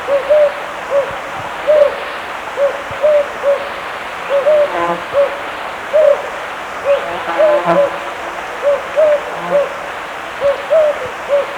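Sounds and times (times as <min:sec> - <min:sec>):
Jocotoco antpitta calling with low short hooting notes in Ecuador: 0:00.0 - 0:11.5
background hiss: 0:00.0 - 0:11.5.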